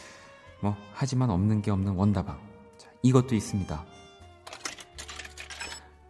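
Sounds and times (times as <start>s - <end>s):
speech: 0.6s - 3.9s
coin changer machine dispensing coins: 4.5s - 5.9s.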